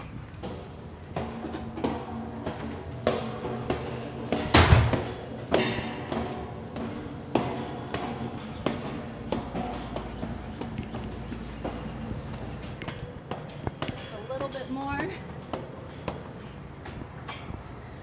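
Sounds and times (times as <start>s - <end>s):
footsteps climbing a flight of stairs: 0.0s - 18.0s
heavy tower door unlocked and opened: 4.0s - 6.2s.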